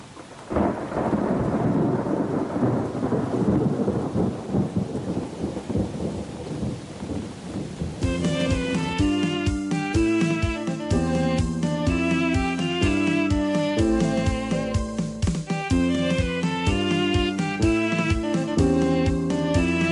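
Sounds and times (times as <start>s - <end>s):
rolling thunder in a thunderstorm: 0.0s - 8.8s
heavy rain in a thunderstorm: 0.0s - 19.9s
melodic instrumental tune: 8.0s - 19.9s.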